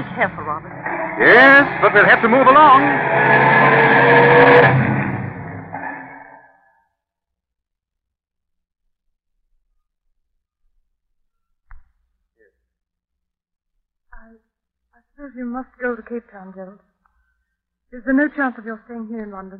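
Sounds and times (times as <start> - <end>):
speech: 0.0 - 5.0, 15.2 - 16.9, 17.9 - 19.5
car engine roaring as it speeds off: 0.0 - 6.4.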